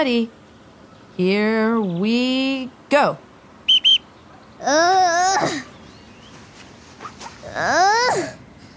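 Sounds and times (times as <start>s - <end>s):
speech: 0.0s - 0.4s, 1.2s - 3.3s, 4.6s - 5.6s, 7.6s - 8.4s
coach's whistle blasts: 3.7s - 4.1s.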